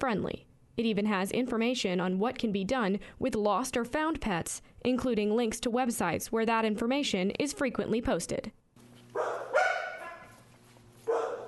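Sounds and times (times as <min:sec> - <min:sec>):
speech: 0:00.0 - 0:08.6, 0:09.2 - 0:09.5
dogs barking at an animal shelter: 0:09.1 - 0:11.4.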